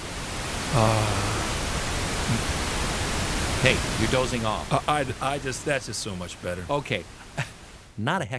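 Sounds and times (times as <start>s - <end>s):
pink noise: 0.0s - 8.0s
speech: 0.7s - 1.3s, 2.3s - 2.6s, 3.6s - 8.3s
faint vocal sound: 0.7s - 2.5s.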